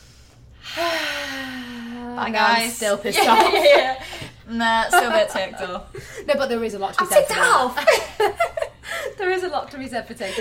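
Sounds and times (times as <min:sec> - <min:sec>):
person taking a deep breath: 0:00.0 - 0:02.2
speech: 0:02.2 - 0:08.6, 0:09.2 - 0:10.3.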